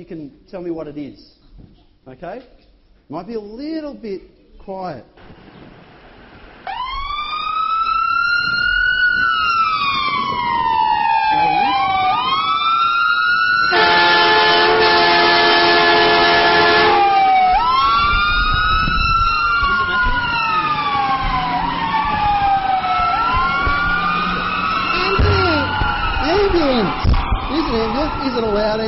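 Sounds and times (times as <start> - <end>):
speech: 0.0 - 5.6
loud ambulance siren wailing: 6.7 - 28.8.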